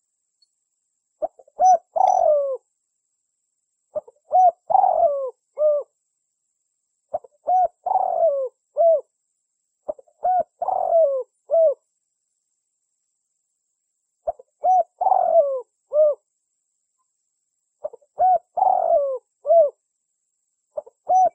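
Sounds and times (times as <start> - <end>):
spotted dove cooing lure call: 1.2 - 2.6, 3.9 - 5.9, 7.1 - 9.1, 9.9 - 11.8, 14.2 - 16.3, 17.8 - 19.8, 20.8 - 21.3.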